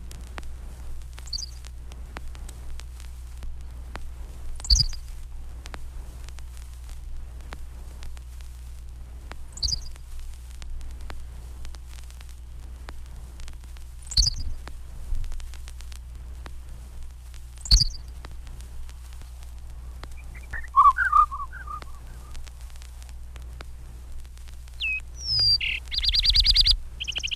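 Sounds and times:
low steady hum: 0.0 - 27.3
Henslow's sparrow song slowed to quarter speed: 1.3 - 1.6, 4.6 - 5.0, 9.6 - 9.9, 14.1 - 14.6, 17.6 - 18.2, 20.1 - 22.4, 24.8 - 27.3
fuller burst of twittering notes: 20.2 - 22.4.

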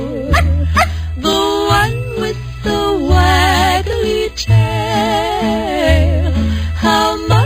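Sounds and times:
sung tune with instrumental accompaniment and steady bass: 0.0 - 7.4
dog barking: 0.3 - 1.0.

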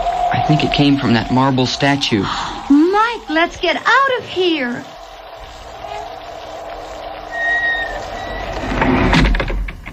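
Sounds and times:
speech: 0.5 - 4.9
house door sliding shut with a whining creak: 7.4 - 9.9.

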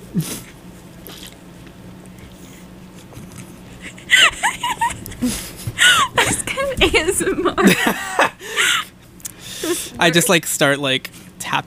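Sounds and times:
speech: 0.1 - 0.5, 5.2 - 5.5, 6.9 - 8.3, 10.0 - 11.6
slurping sip of a drink: 0.2 - 1.4
laughter: 3.8 - 8.9.

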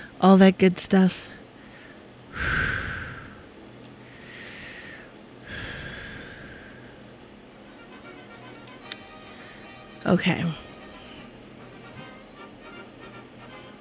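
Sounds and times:
speech: 0.2 - 1.4, 10.0 - 10.6
deep breathing during a guided breathing exercise: 1.5 - 7.2.

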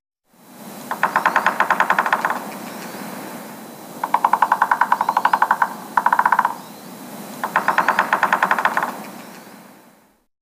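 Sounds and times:
steady outdoor hiss: 0.3 - 10.3
three-toed woodpecker drumming: 0.9 - 3.0, 4.0 - 6.7, 7.4 - 9.4.

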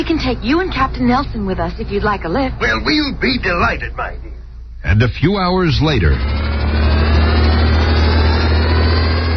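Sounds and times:
speech: 0.0 - 6.9
flying car's jet prop engines droning: 0.0 - 9.3.

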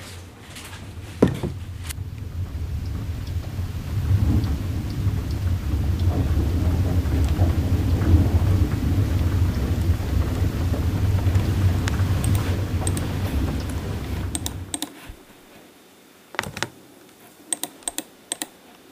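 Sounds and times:
steady rain: 0.0 - 16.3
low thunder rumbling: 0.2 - 14.8.

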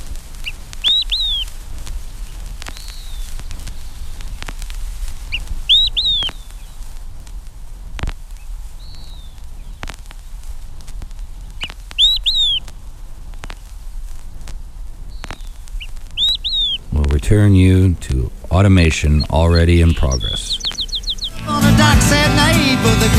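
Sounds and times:
low background rumble: 0.0 - 23.1
Olive-sided Flycatcher singing from the top of a spruce: 0.4 - 7.0, 8.4 - 10.0, 11.4 - 12.7, 15.1 - 16.9, 20.0 - 21.5
speech: 17.3 - 20.6.

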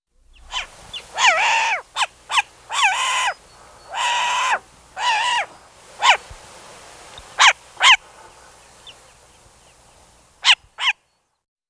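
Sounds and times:
short-eared owl harsh raspy barking calls: 0.3 - 6.4, 7.2 - 9.0, 10.4 - 11.1.

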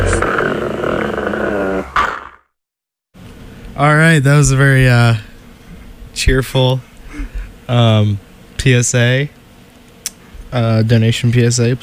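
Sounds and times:
puppy growling: 0.0 - 2.4
speech: 3.8 - 5.3, 6.2 - 6.9, 7.7 - 9.4, 10.5 - 11.8.

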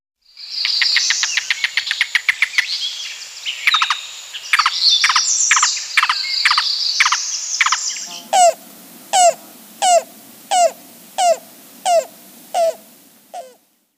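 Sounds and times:
steady hum of insects: 0.4 - 13.7
yellow-billed cuckoo calling: 6.5 - 13.6.

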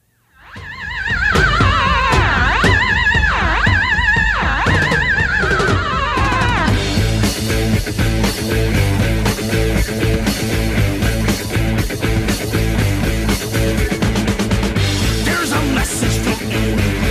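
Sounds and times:
wavering whinny-like synth wails: 0.3 - 7.0
full band playing pop-rock song with driving drums: 0.4 - 17.0.

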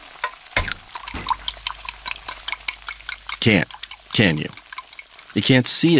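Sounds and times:
dishes and utensils clinking and scraping in a kitchen: 0.0 - 5.6
low hum: 0.8 - 5.2
speech: 3.4 - 4.6, 5.3 - 5.9.

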